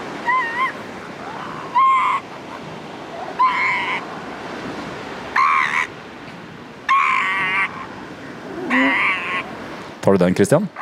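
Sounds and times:
steady surf-like noise: 0.0s - 10.8s
elephant seal calling with harsh wavering cries: 0.1s - 4.1s, 5.3s - 6.0s, 6.9s - 9.6s
speech: 10.0s - 10.8s.

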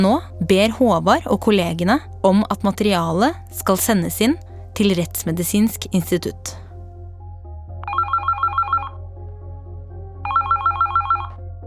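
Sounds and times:
speech: 0.0s - 6.6s
telephone ringing with trilling electronic tones: 7.8s - 9.0s, 10.3s - 11.4s.

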